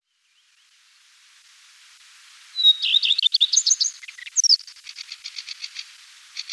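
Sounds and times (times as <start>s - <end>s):
common redstart song phrase: 2.6s - 5.8s.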